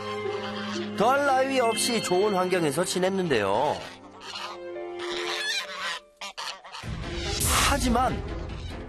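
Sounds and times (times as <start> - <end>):
flock of geese honking: 0.0 - 1.4, 2.6 - 6.9
speech: 1.0 - 4.0, 7.8 - 8.4.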